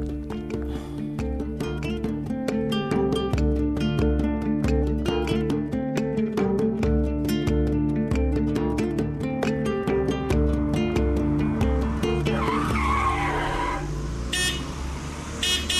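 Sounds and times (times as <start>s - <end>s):
steady rhythmic music bed: 0.0s - 12.4s
car tire squeal and brief skid pulling up beside a pedestrian: 11.8s - 15.7s.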